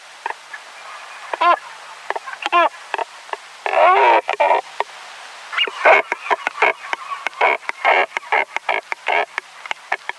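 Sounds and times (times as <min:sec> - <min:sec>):
European shag uttering rasping gurgling croaks and sharp clicks: 0:02.1 - 0:04.7, 0:05.6 - 0:10.1.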